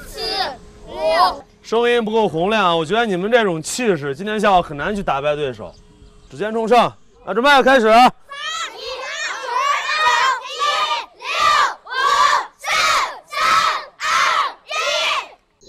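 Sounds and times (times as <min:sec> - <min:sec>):
group of young voices shouting at a boys' manhood training camp: 0:00.0 - 0:01.4, 0:08.3 - 0:15.6
speech: 0:01.2 - 0:08.2.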